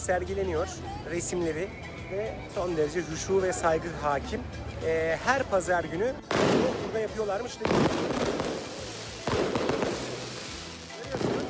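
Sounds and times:
speech: 0:00.0 - 0:08.4
fireworks bangs and crackles: 0:06.3 - 0:11.4.

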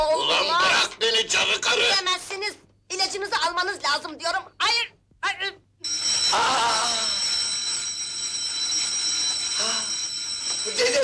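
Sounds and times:
speech: 0:01.2 - 0:07.1, 0:10.6 - 0:11.0
hand bell rung by a grandfather: 0:05.8 - 0:11.0.

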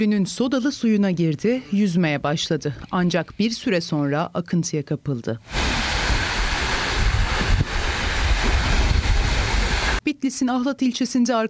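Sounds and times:
speech: 0:00.0 - 0:06.0, 0:10.3 - 0:11.4
wind buffeting the microphone over Lake Van in Ahlat Bitlis Turkey: 0:05.5 - 0:10.0.

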